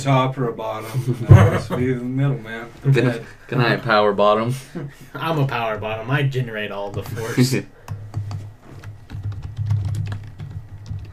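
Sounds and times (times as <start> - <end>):
speech: 0.0 - 7.8
laughter: 0.8 - 2.0
typing on a computer keyboard: 7.9 - 11.1.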